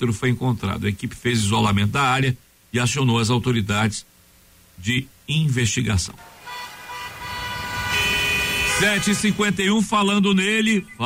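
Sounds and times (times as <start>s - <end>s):
speech: 0.0s - 4.1s, 4.8s - 6.3s, 8.8s - 11.0s
police patrol car siren: 6.2s - 9.8s
police patrol car horn honking: 6.2s - 9.9s
traffic rumble: 6.2s - 10.0s.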